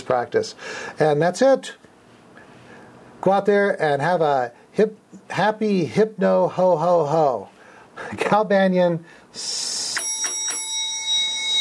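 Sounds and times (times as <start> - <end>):
speech: 0.1 - 1.9, 3.2 - 10.0
sleigh bells jingling: 10.0 - 11.6.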